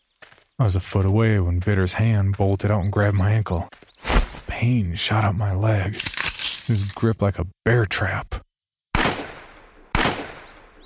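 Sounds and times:
speech: 0.6s - 6.1s, 6.7s - 8.4s
gunshots: 9.0s - 10.7s.

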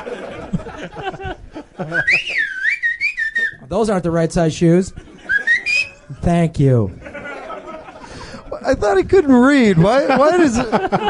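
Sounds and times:
laughter: 0.0s - 2.6s, 4.9s - 6.1s, 6.7s - 11.0s
speech: 0.8s - 2.6s, 3.7s - 5.1s, 6.2s - 7.0s, 8.7s - 11.0s
person whistling a bright wavering tune: 1.9s - 3.6s, 5.3s - 6.0s.

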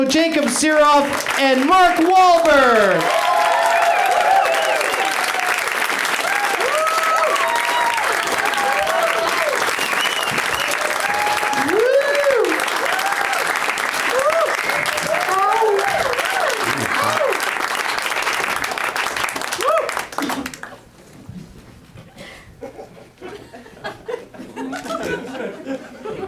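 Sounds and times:
people chatting: 0.0s - 3.0s
speech: 0.0s - 3.2s
large audience applauding guests: 0.0s - 20.9s
whoops and cheers from audience: 3.0s - 17.5s, 19.5s - 20.1s
laughter: 14.1s - 17.4s, 22.6s - 26.2s.

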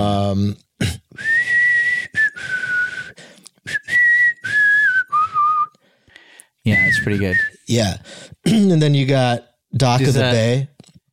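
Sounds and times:
speech: 0.3s - 1.0s, 6.6s - 10.7s
person whistling a slow wavering melody: 1.2s - 5.8s, 6.7s - 7.7s.

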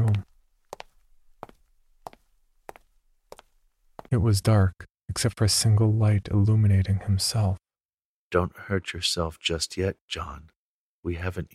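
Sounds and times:
heavy footsteps of a fat man walking: 0.0s - 4.1s
speech: 4.2s - 7.6s, 8.3s - 11.5s.

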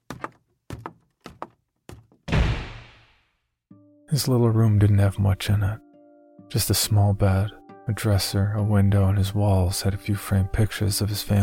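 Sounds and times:
thumping steps stumbling up a small staircase: 0.0s - 2.3s
heavy bedroom door slammed violently by a 16-year-old boy: 2.2s - 3.1s
speech: 4.1s - 5.8s, 6.5s - 11.4s.

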